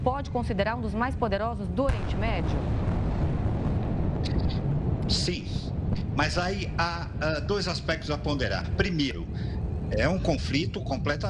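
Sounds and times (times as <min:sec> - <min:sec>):
speech: 0:00.1 - 0:03.4, 0:04.2 - 0:11.2
deep explosion in the Gaza Strip at night with heavy rumble: 0:00.3 - 0:11.2.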